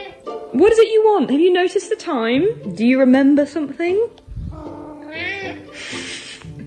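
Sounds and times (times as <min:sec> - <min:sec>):
cat meowing to be fed: 0:00.0 - 0:00.2, 0:04.4 - 0:06.0
low noise: 0:00.0 - 0:06.6
speech: 0:00.5 - 0:04.2.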